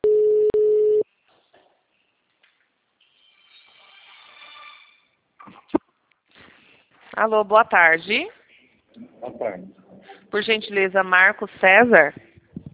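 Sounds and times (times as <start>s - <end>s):
outgoing telephone call line tone beeps: 0.0s - 1.0s
speech: 7.2s - 8.4s, 9.2s - 12.2s.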